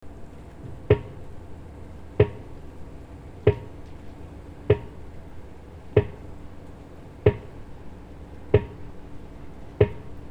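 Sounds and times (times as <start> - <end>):
pile driver pounding: 0.6 - 1.5, 2.2 - 2.8, 3.5 - 4.1, 4.7 - 5.3, 5.9 - 6.5, 7.2 - 10.2.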